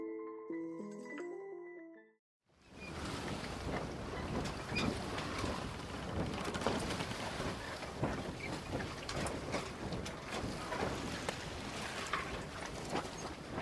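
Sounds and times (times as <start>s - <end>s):
short run of musical tones: 0.0s - 2.2s
wind at the shoreline: 2.5s - 13.5s
launch boat dragged ashore: 2.6s - 13.5s
sea surf breaking at the shoreline: 2.6s - 13.5s.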